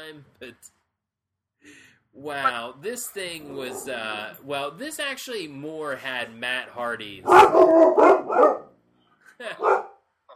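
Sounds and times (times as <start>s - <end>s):
speech: 0.1s - 0.8s, 1.6s - 8.6s, 9.4s - 9.9s
dogs barking through an open front window at passersby: 3.4s - 4.3s, 7.2s - 8.7s, 9.6s - 10.0s.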